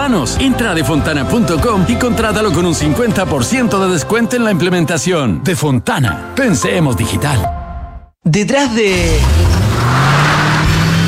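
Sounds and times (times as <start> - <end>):
speech: 0.1 - 7.6, 8.2 - 9.5
car engine revving as the car accelerates: 8.9 - 11.0.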